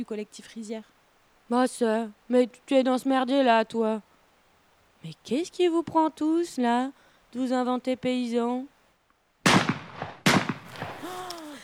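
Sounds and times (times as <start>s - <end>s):
speech: 0.0s - 4.1s, 5.0s - 8.7s
gunshot in a tense rural confrontation: 9.5s - 11.2s
short vocal cry: 11.0s - 11.6s.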